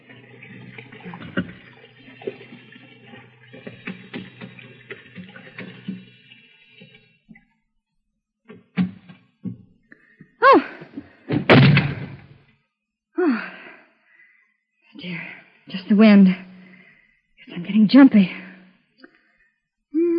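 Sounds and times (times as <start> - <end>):
hot water gushing from a bathroom sink tap: 0.0 - 7.4
brief clunks: 11.3 - 12.3
speech: 16.0 - 16.4, 17.9 - 18.4.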